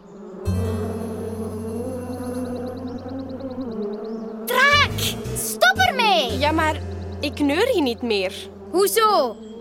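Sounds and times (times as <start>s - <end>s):
bees buzzing: 0.2s - 9.5s
speech: 6.3s - 9.4s.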